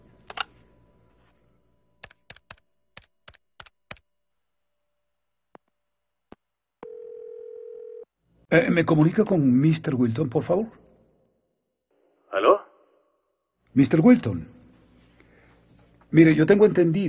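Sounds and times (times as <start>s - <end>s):
telephone dial tone: 6.8s - 8.1s
speech: 8.5s - 10.8s, 13.8s - 14.6s, 16.1s - 17.0s.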